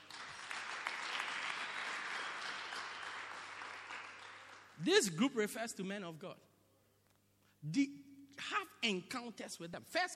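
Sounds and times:
sizable audience clapping in a room: 0:00.0 - 0:04.9
speech: 0:04.8 - 0:06.5, 0:07.6 - 0:08.0, 0:08.8 - 0:10.1.

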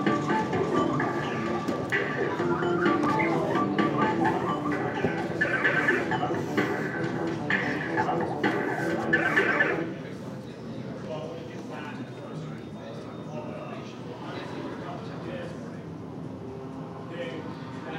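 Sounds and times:
arcade game machine sounds: 0:00.0 - 0:09.9
chatter in a busy arcade: 0:00.0 - 0:17.9.

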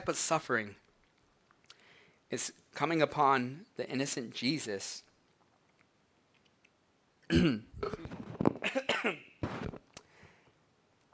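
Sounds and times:
speech: 0:00.0 - 0:00.8, 0:02.3 - 0:05.1, 0:07.3 - 0:09.3
rough throaty cough: 0:07.3 - 0:09.4.

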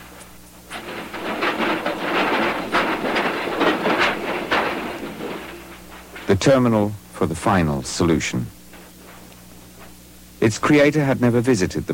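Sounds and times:
goods train rolling on rails: 0:00.0 - 0:09.2
metallic clacks from train wheels passing over track joints: 0:00.2 - 0:09.0
speech: 0:06.3 - 0:08.6, 0:10.4 - 0:11.9.

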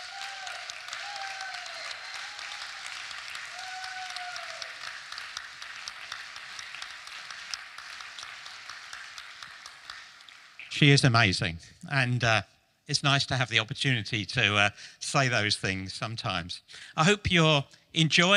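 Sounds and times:
whistles and cheers: 0:00.0 - 0:05.0
crowd applauding: 0:00.0 - 0:11.0
speech: 0:10.7 - 0:18.3.

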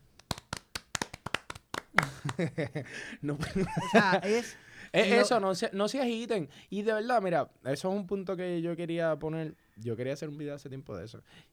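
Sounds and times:
quick uneven hand claps: 0:00.0 - 0:02.6
laughter: 0:01.9 - 0:05.3
speech: 0:02.4 - 0:11.5.

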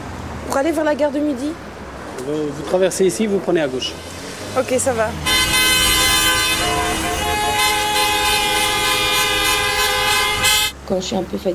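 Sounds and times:
heavy city street traffic rumble: 0:00.0 - 0:11.5
speech: 0:00.5 - 0:05.4, 0:10.9 - 0:11.5
loud sustained car horn on a busy city street: 0:05.2 - 0:10.8.

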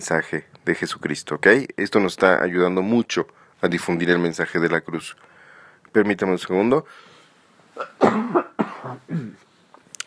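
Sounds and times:
speech: 0:00.0 - 0:05.3, 0:05.9 - 0:07.1
person coughing harshly: 0:07.8 - 0:09.4.

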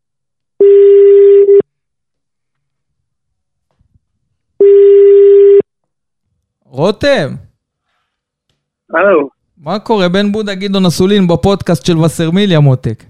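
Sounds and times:
ringback tone of an outgoing telephone call: 0:00.6 - 0:01.6, 0:04.6 - 0:05.6
speech: 0:06.8 - 0:07.4, 0:08.9 - 0:13.0.

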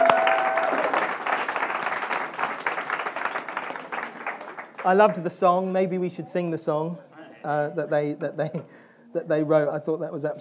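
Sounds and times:
room full of people applauding: 0:00.0 - 0:05.0
speech: 0:04.8 - 0:10.3.

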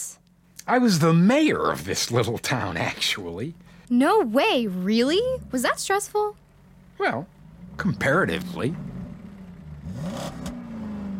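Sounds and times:
speech: 0:00.7 - 0:06.4, 0:07.0 - 0:08.9
car engine revving: 0:00.7 - 0:11.1.

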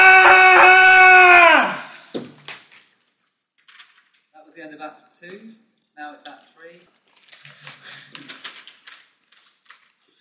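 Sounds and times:
person screaming in terror while being dragged through a door: 0:00.0 - 0:02.0
speech: 0:04.9 - 0:07.0.

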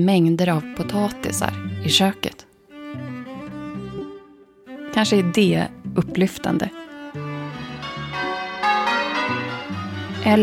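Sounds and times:
speech: 0:00.0 - 0:03.1, 0:05.0 - 0:06.8, 0:10.2 - 0:10.4
church bells ringing in a sustained overlapping peal: 0:07.8 - 0:10.4.

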